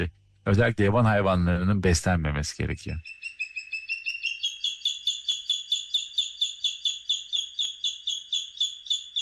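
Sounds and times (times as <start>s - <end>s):
speech: 0.0s - 3.2s
bird calling in high chirps: 2.7s - 9.2s.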